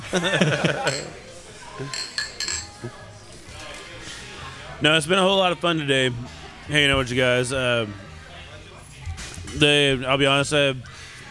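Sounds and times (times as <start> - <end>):
laughter: 0.0 - 1.9
speech: 0.1 - 2.2, 2.8 - 3.0, 4.8 - 8.0, 9.5 - 10.9
glasses of alcohol clinking in a toast: 0.7 - 1.2, 1.9 - 2.8.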